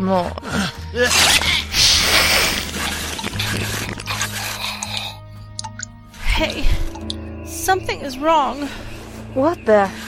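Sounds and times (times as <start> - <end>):
speech: 0.1 - 1.5, 6.4 - 6.9, 7.7 - 10.0
wet squelching chewing of creatures being fed: 1.2 - 5.9.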